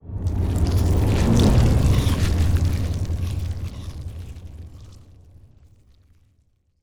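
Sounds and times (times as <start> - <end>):
colossal ant ship moving: 0.2 - 5.0.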